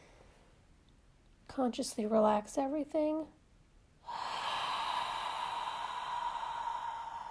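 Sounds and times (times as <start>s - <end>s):
speech: 1.6s - 3.4s
deep inhale during a guided relaxation breathing exercise: 4.0s - 7.2s.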